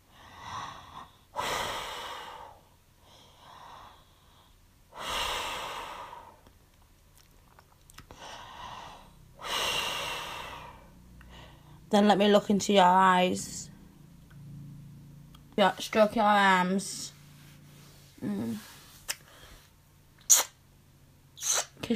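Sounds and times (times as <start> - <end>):
slow deep breathing in and out: 0.0 - 6.6, 8.1 - 11.9, 17.1 - 19.9
speech: 11.9 - 13.6, 15.6 - 17.1.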